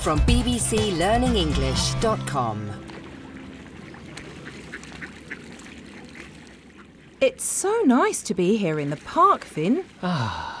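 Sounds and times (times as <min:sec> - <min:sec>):
speech: 0:00.0 - 0:02.9, 0:07.2 - 0:10.5
ducks quacking: 0:03.8 - 0:07.2.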